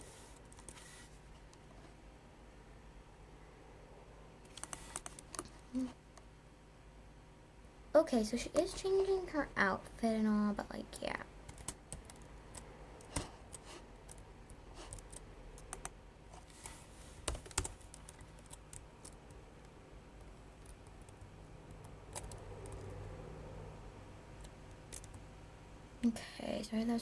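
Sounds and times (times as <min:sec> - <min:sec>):
typing on a computer keyboard: 0:00.4 - 0:00.8, 0:04.5 - 0:05.5, 0:11.5 - 0:16.0, 0:17.2 - 0:19.4, 0:20.6 - 0:23.0, 0:24.4 - 0:25.2
speech: 0:05.7 - 0:06.0, 0:08.0 - 0:11.3, 0:26.8 - 0:27.0.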